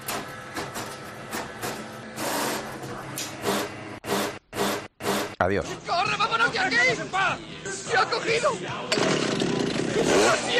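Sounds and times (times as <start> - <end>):
printer grinding and whirring while jamming: 0.0 - 5.4
speech: 5.4 - 10.5.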